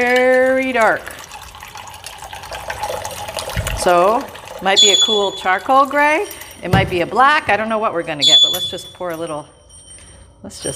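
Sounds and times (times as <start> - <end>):
speech: 0.0 - 1.2, 3.8 - 9.6, 10.4 - 10.7
water pouring into a paint container: 0.0 - 6.6.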